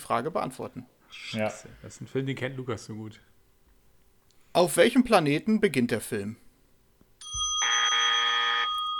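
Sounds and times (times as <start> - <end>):
speech: 0.1 - 3.3, 4.6 - 6.4
reception desk bell used as a quiz buzzer ringing: 7.2 - 8.9.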